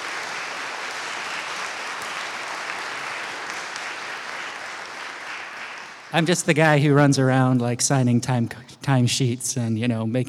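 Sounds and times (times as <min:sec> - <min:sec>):
applause from a sizable crowd: 0:00.0 - 0:06.7
speech: 0:06.1 - 0:10.2.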